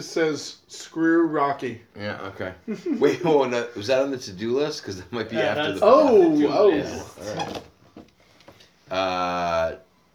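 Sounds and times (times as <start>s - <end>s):
speech: 0.0s - 7.7s, 8.9s - 9.8s
laptop creaking: 7.2s - 8.6s.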